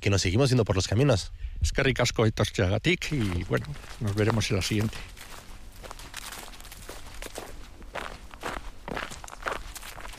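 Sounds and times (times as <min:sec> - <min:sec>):
speech: 0:00.0 - 0:05.3
footsteps walking along a trail from a train station: 0:02.8 - 0:10.1.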